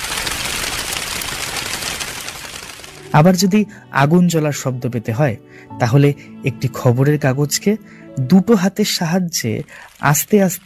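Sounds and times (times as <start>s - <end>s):
dry leaves shaken by hand imitating pigeons taking flight: 0.0s - 3.0s
speech: 3.1s - 10.6s.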